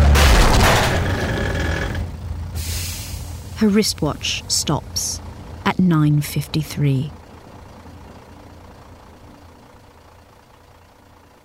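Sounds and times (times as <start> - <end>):
truck fender crashing into a bicycle: 0.0 - 2.1
speech: 3.6 - 7.2.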